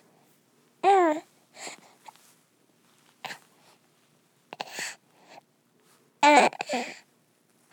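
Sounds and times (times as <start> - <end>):
human baby fussing: 0.8 - 1.8, 6.2 - 7.0.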